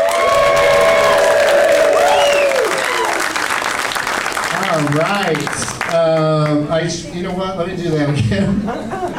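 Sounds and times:
crowd whooping and cheering: 0:00.0 - 0:04.0
loud crowd applauding: 0:00.0 - 0:06.6
speech: 0:05.3 - 0:09.1
laughter: 0:08.4 - 0:09.1.

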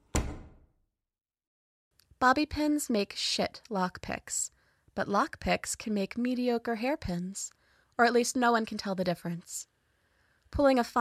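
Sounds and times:
office door banging open: 0:00.0 - 0:00.7
speech: 0:02.2 - 0:09.7, 0:10.5 - 0:10.9.

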